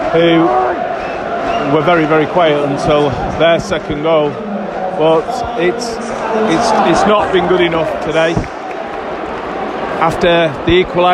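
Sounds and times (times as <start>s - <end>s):
football supporters singing and chanting in unison at the King Power Stadium: 0.0s - 3.2s, 4.2s - 7.8s
speech: 0.1s - 8.6s, 10.0s - 11.1s.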